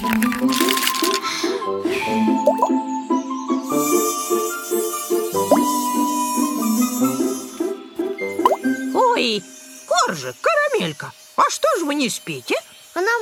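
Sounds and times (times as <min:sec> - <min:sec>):
speech: 0:00.0 - 0:00.6, 0:10.2 - 0:13.2
bright tinkling musical background: 0:00.3 - 0:10.3
soft bubbly plops and pops: 0:02.5 - 0:02.8.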